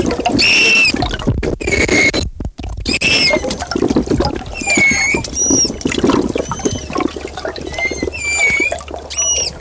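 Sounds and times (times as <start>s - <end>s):
gurgling trickling water: 0.0s - 9.5s
frightened manatee chirps: 0.4s - 1.0s, 1.6s - 2.2s, 2.9s - 3.6s, 4.5s - 9.5s.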